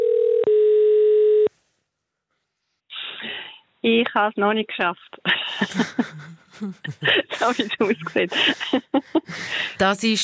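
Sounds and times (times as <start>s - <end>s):
telephone dial tone as a call is placed to an organization in Switzerland: 0.0s - 1.5s
speech: 3.8s - 10.2s
laughter: 5.3s - 9.8s.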